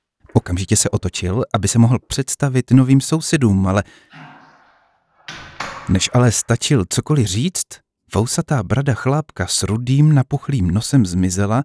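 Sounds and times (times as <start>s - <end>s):
speech: 0.4s - 4.2s, 5.9s - 11.6s
apartment door creaking open: 4.1s - 6.5s
sharp door knocks or thuds: 5.3s - 6.4s.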